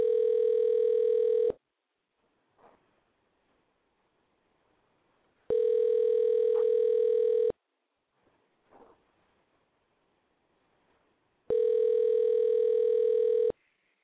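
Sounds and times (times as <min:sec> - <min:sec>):
outgoing phone call ringing tone through a handset: 0:00.0 - 0:01.6, 0:05.5 - 0:07.6, 0:11.5 - 0:13.6
faint rustling: 0:02.1 - 0:07.4, 0:08.0 - 0:13.4.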